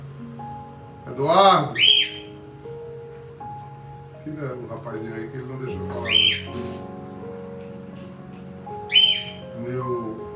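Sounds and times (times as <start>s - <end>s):
speech: 1.1s - 1.9s, 4.2s - 7.0s, 9.6s - 10.2s
pet cockatiel whistled call: 1.7s - 2.3s, 6.0s - 6.7s, 8.9s - 9.4s.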